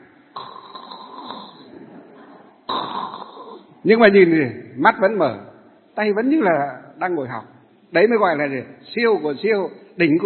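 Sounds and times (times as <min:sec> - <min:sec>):
voice imitating a person snoring: 0:00.3 - 0:03.7
speech: 0:03.8 - 0:10.2.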